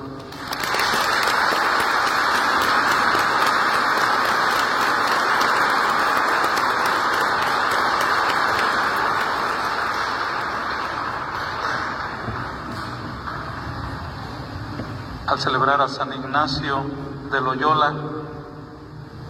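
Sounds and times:
large crowd applauding at a church celebration of Saint Ignatius of Loyola: 0.0s - 13.7s
speech: 15.4s - 18.1s.

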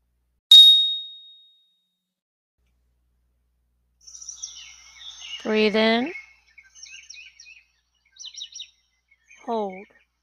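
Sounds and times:
meditation bell struck: 0.5s - 1.4s
soft bird chirps: 4.0s - 10.2s
speech: 5.4s - 6.2s, 9.5s - 10.0s.

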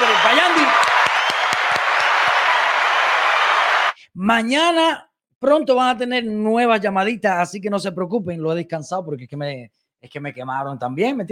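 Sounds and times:
crowd applause with dense steady clapping: 0.0s - 4.0s
speech: 4.3s - 11.2s.

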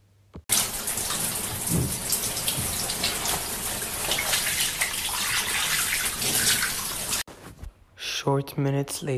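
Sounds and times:
shower water running: 0.5s - 7.3s
speech: 8.2s - 9.1s.

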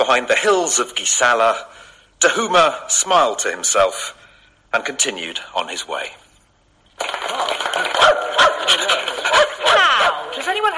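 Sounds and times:
speech: 0.1s - 6.2s, 7.0s - 10.7s
dog barking and yipping: 8.0s - 10.4s.

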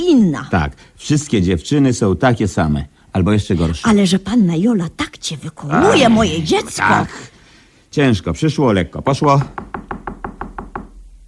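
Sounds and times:
speech: 0.0s - 7.3s, 7.9s - 10.1s
firm knocking on a door: 9.3s - 11.0s.

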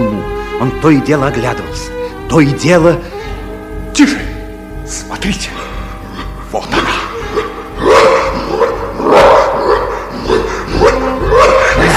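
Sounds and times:
speech: 0.6s - 3.2s, 4.0s - 4.3s, 4.9s - 5.7s
huge jet-black dog barking deeply and harshly: 6.8s - 11.9s.

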